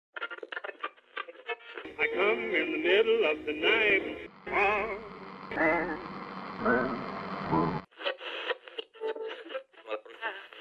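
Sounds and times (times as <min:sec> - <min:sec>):
radio static with warbling whistling tones: 0:01.8 - 0:10.6
thin band-limited voice crackling through a radio broadcast: 0:01.9 - 0:08.5
speech: 0:02.1 - 0:07.8.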